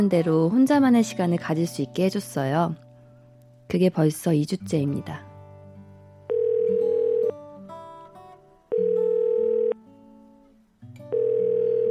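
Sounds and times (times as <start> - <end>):
speech: 0.0 - 2.8, 3.7 - 5.3
soft music: 0.0 - 11.8
telephone ringback tone: 6.3 - 7.4, 8.7 - 9.8, 11.1 - 11.8.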